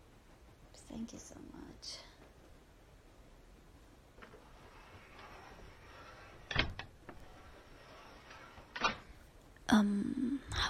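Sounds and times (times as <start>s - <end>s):
speech: 0.9s - 2.1s, 9.7s - 10.6s
train compartment sliding door rattling and clunking open: 4.2s - 9.2s.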